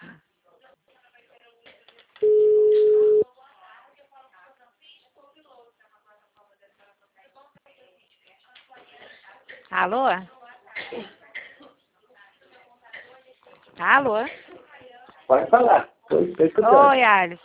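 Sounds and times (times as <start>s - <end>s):
telephone ringback tone on an outgoing call: 2.2s - 3.2s
speech: 9.8s - 11.2s, 13.8s - 14.4s, 15.3s - 17.4s.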